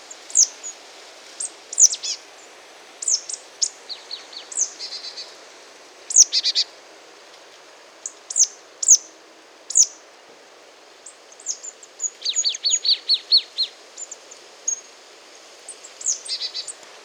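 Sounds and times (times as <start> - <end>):
marsh tit Poecile palustris calling: 0.3 - 0.8, 1.4 - 2.2, 3.0 - 5.3, 6.1 - 6.7, 8.0 - 9.1, 9.7 - 10.0, 11.0 - 14.9, 15.7 - 16.8.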